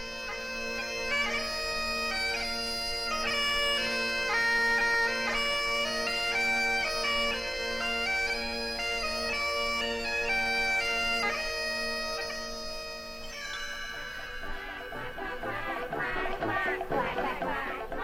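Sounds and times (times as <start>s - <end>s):
bright music-box-like melody: 0.0s - 18.0s
flock of geese honking: 0.0s - 18.0s
busier chattering sounds: 13.2s - 18.0s.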